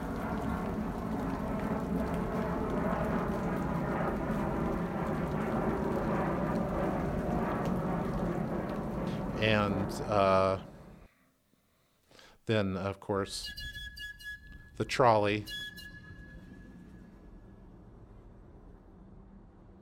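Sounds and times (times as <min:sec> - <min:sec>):
heavy rain: 0:00.0 - 0:10.8
jet aircraft engine droning: 0:00.0 - 0:10.9
speech: 0:09.4 - 0:10.7, 0:12.5 - 0:13.8, 0:14.8 - 0:15.6.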